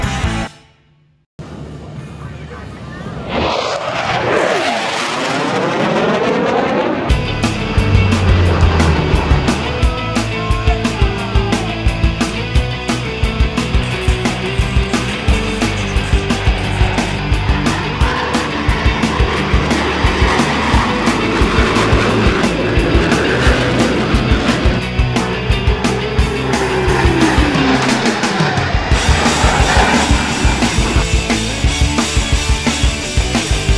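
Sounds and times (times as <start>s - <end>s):
jet aircraft roaring past at an air show: 1.4s - 33.7s.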